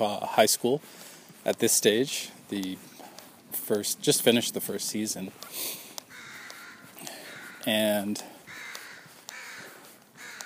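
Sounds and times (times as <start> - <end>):
speech: 0.0 - 2.9, 3.7 - 5.8, 7.6 - 8.3
crow cawing: 6.1 - 10.4.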